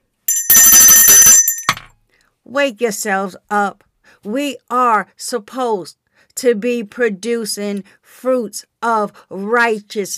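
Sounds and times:
bell ringing: 0:00.3 - 0:01.9
speech: 0:02.5 - 0:10.1.

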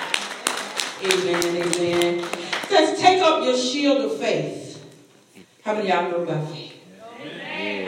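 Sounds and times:
church audience clapping in unison during a sermon: 0:00.0 - 0:03.0
speech: 0:01.0 - 0:04.6, 0:05.6 - 0:06.7.

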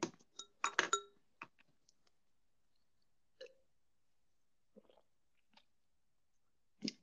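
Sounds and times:
wine glasses clinking in a toast: 0:00.4 - 0:01.2.

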